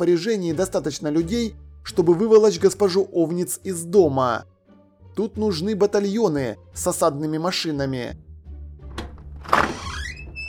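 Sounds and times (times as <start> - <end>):
speech: 0.0 - 4.5, 5.2 - 8.2
door creaking open: 8.8 - 10.4.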